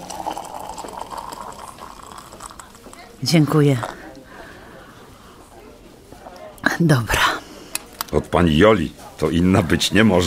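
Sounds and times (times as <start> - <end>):
hot tea pouring from a thermos into a mug: 0.0 - 3.2
speech: 3.2 - 4.0, 6.8 - 7.2, 8.1 - 10.2.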